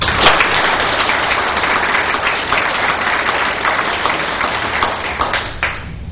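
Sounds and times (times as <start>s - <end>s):
crowd applauding: 0.0s - 6.0s.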